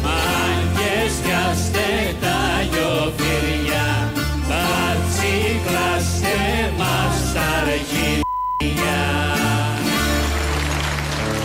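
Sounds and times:
Greek song playing loudly: 0:00.0 - 0:10.7
mid-pitched censor beep: 0:08.2 - 0:08.7.

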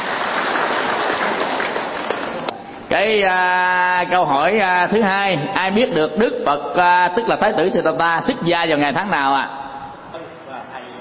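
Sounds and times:
audience applause at a Buddhist teaching session: 0:00.0 - 0:02.5
speech: 0:02.9 - 0:09.6.

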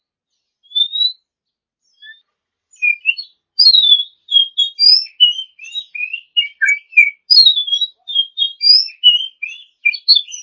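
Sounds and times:
Oriental magpie-robin singing: 0:00.3 - 0:10.4.

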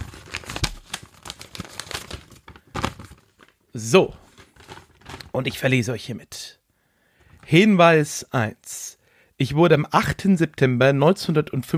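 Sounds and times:
sealed paper envelope crinkling and tearing open: 0:00.0 - 0:03.5, 0:04.2 - 0:05.3
speech: 0:03.8 - 0:04.2, 0:05.4 - 0:06.6, 0:07.5 - 0:08.6, 0:09.4 - 0:11.7.

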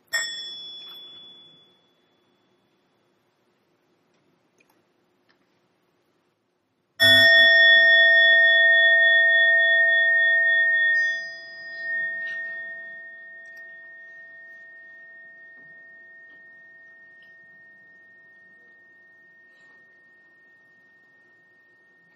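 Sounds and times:
mindfulness bell ringing: 0:00.1 - 0:02.5, 0:07.0 - 0:22.1.

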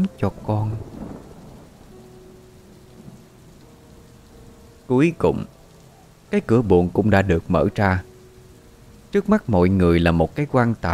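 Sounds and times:
speech: 0:00.0 - 0:00.9, 0:04.9 - 0:05.6, 0:06.3 - 0:08.1, 0:09.1 - 0:10.9
steady dense rainfall in a thunderstorm: 0:00.0 - 0:10.9
low rolling thunder in a thunderstorm: 0:00.3 - 0:04.6.

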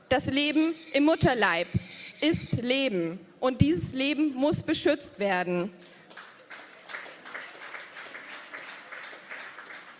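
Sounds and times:
speech: 0:00.1 - 0:05.8
restrained applause from an audience: 0:05.8 - 0:09.9.

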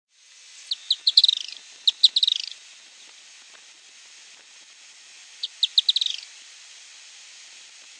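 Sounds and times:
firewood-gatherer Anumbius annumbi calls: 0:00.7 - 0:02.6, 0:05.4 - 0:06.3.

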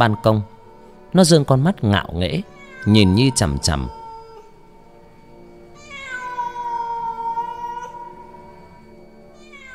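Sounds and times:
speech: 0:00.0 - 0:00.5, 0:01.1 - 0:04.0
black cat meowing: 0:02.4 - 0:04.6, 0:05.8 - 0:08.6, 0:09.4 - 0:09.7.

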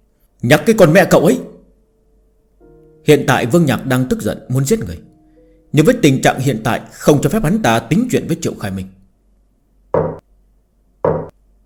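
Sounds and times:
speech: 0:00.4 - 0:01.5, 0:03.0 - 0:05.1, 0:05.7 - 0:09.0
knocking on a door: 0:09.9 - 0:10.2, 0:11.0 - 0:11.3.

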